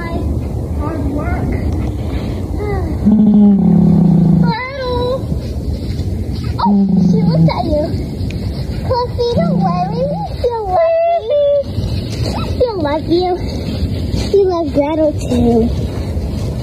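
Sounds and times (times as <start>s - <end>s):
busy noisy background: 0.0s - 16.6s
donkey growling: 3.0s - 4.6s, 6.6s - 7.9s, 9.4s - 10.4s.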